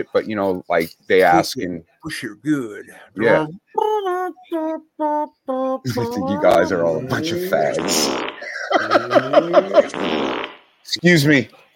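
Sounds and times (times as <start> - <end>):
speech: 0.0 - 11.6
laughter: 5.9 - 10.0
fart sound effect played from a soundboard: 7.0 - 10.7.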